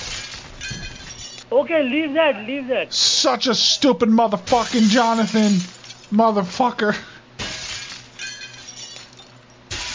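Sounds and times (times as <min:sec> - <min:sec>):
bathroom mirror glass shattering: 0:00.0 - 0:01.4, 0:04.4 - 0:06.3, 0:07.4 - 0:09.9
bright tinkling mirror glass shards scattering: 0:00.0 - 0:01.4, 0:04.7 - 0:06.3, 0:07.4 - 0:09.8
speech: 0:01.5 - 0:07.1.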